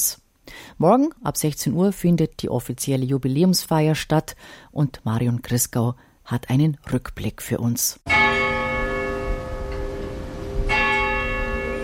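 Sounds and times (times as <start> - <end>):
speech: 0.8 - 8.4
church bells ringing: 8.1 - 11.8.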